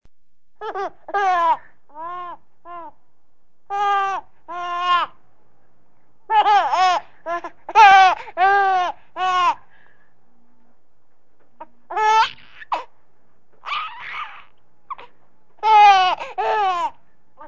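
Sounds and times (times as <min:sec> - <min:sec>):
baby laughing: 0:00.6 - 0:02.9, 0:06.3 - 0:09.6, 0:11.9 - 0:12.9, 0:13.6 - 0:17.4.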